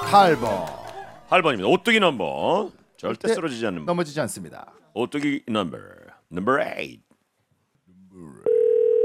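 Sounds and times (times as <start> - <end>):
speech: 0.1 - 0.8, 1.3 - 7.1
electronic telephone ringing tone of an incoming call: 8.5 - 9.0.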